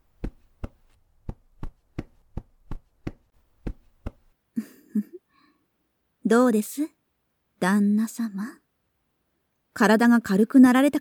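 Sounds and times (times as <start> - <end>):
rhythmic tapping massage of hands on shoulders: 0.2 - 4.3
speech: 5.0 - 5.2, 6.3 - 7.0, 7.6 - 8.6, 9.8 - 10.9.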